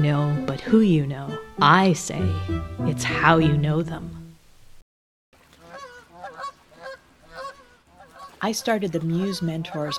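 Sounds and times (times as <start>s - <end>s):
speech: 0.0s - 4.2s, 8.4s - 9.9s
geese honking: 5.5s - 9.9s.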